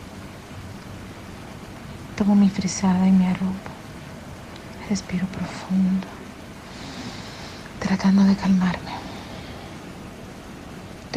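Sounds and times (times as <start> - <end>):
steady rain in very cold windy weather: 0.0 - 11.1
speech: 2.2 - 3.7, 4.9 - 6.2, 7.9 - 9.0.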